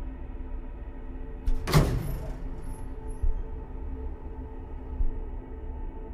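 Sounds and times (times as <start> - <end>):
steady low mechanical hum: 0.0 - 6.1
elevator doors sliding shut: 1.5 - 5.1.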